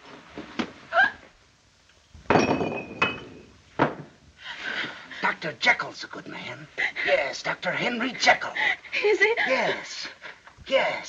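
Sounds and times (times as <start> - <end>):
wine glass clinking and tapping as it is set out: 2.3 - 3.6
speech: 5.4 - 11.0.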